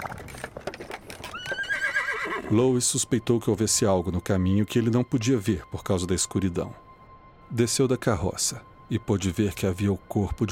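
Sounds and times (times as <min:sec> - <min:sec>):
horse hooves clattering: 0:00.0 - 0:02.6
horse whinnying loudly: 0:01.3 - 0:02.5
speech: 0:02.5 - 0:06.8, 0:07.5 - 0:10.5.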